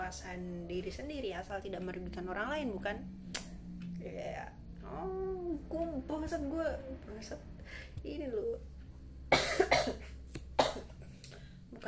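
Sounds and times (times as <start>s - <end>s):
speech: 0.1s - 3.4s, 4.0s - 8.7s, 9.6s - 10.2s
person coughing: 9.3s - 11.0s.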